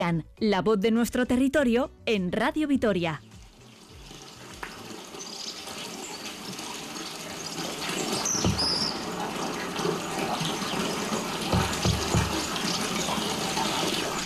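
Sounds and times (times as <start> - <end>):
speech: 0.1 - 3.3
water jet from a village fountain: 3.8 - 14.2.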